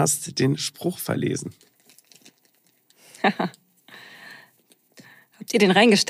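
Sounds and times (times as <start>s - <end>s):
speech: 0.0s - 1.7s, 3.2s - 3.6s, 5.4s - 6.0s
crinkly plastic fortune cookie wrapper being torn open: 1.5s - 3.2s.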